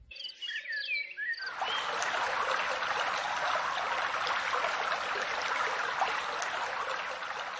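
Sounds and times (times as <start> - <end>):
bright bird chirps: 0.0 - 1.5
rushing water from a flowing stream: 1.5 - 7.5.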